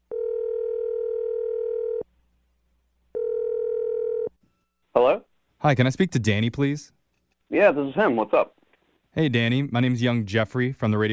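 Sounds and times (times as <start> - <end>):
long steady telephone ringback tones: 0.1 - 2.0, 3.2 - 4.3
speech: 5.0 - 7.0, 7.5 - 8.6, 9.2 - 11.1.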